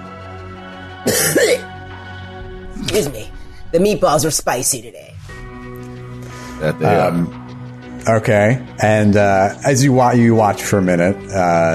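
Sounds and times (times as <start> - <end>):
speech: 1.1 - 1.7, 2.9 - 5.2, 6.6 - 7.4, 8.0 - 11.7
throat-clearing cough: 1.1 - 1.7.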